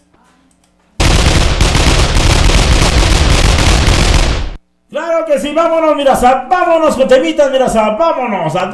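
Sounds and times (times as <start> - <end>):
loud rapid gunfire barrage: 1.0 - 4.6
speech: 5.2 - 8.7.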